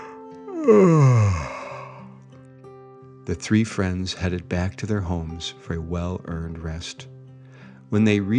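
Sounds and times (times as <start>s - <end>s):
person yawning: 0.0s - 2.1s
speech: 0.7s - 1.5s, 3.3s - 7.2s, 7.9s - 8.3s.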